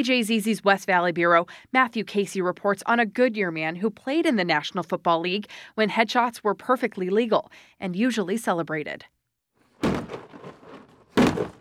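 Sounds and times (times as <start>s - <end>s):
speech: 0.0s - 9.1s, 11.4s - 11.5s
sledgehammer knocking apart a plastic shed toppled by a monsoon storm: 9.8s - 11.5s.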